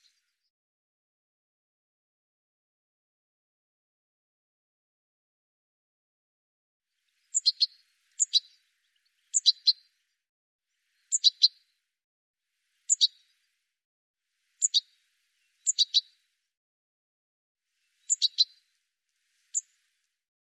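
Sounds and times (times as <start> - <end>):
high bird chirps: 7.3 - 8.5, 9.3 - 9.8, 11.1 - 11.6, 12.9 - 13.2, 14.6 - 14.9, 15.6 - 16.1, 18.0 - 18.6, 19.5 - 19.7.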